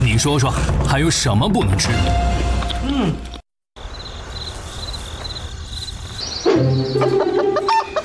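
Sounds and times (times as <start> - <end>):
speech: 0.2 - 3.4
steady drone of chirping insects: 3.8 - 7.8
chickens clucking outdoors: 6.6 - 8.0.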